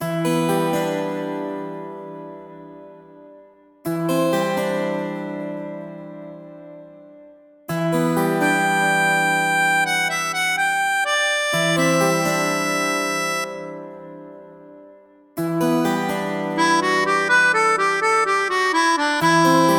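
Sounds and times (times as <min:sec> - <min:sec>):
acoustic music: 0:00.0 - 0:19.7.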